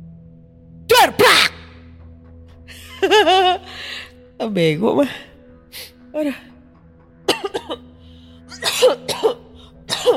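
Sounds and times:
laughter: 2.8 - 3.6
speech: 3.0 - 6.5
person coughing with short sharp hacks and rough throaty fits: 7.3 - 7.9, 8.5 - 10.1.

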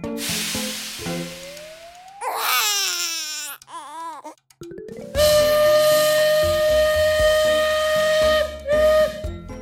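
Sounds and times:
steady whistle-like tone: 1.2 - 2.2, 5.2 - 9.2
baby crying: 2.2 - 4.4.

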